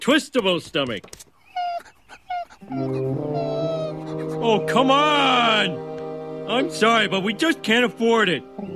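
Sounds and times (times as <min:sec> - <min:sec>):
speech: 0:00.0 - 0:01.3, 0:02.6 - 0:03.5, 0:04.4 - 0:05.9, 0:06.5 - 0:08.7
dog whimpering and whining: 0:01.4 - 0:04.6.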